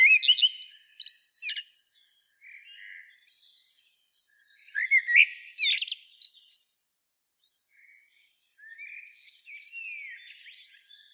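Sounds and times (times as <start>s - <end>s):
common blackbird Turdus merula singing: 0.0s - 3.7s, 4.4s - 6.6s, 8.6s - 11.1s.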